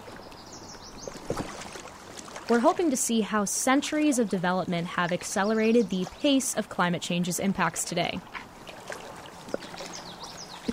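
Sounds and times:
wading through flowing river water: 0:00.0 - 0:10.7
speech: 0:02.5 - 0:08.5.

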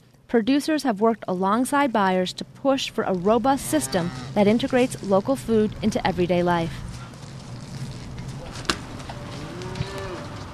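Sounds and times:
steady outdoor noise: 0:00.0 - 0:10.5
speech: 0:00.3 - 0:06.8
stray heifers mooing at a dairy farm near Waukon, Iowa: 0:03.6 - 0:04.5, 0:09.2 - 0:10.4.

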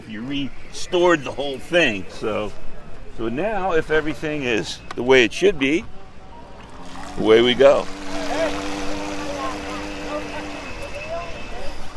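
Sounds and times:
outdoor ambience: 0:00.0 - 0:11.9
speech: 0:00.1 - 0:06.0, 0:07.2 - 0:08.0
small motor of a remote-controlled model boat whining on water: 0:06.6 - 0:11.9.

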